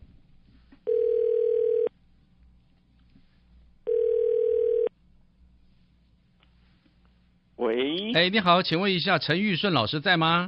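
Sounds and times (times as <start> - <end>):
faint low hum: 0.0 - 10.4
telephone ringback tone: 0.9 - 1.9, 3.9 - 4.9
speech: 8.1 - 10.4.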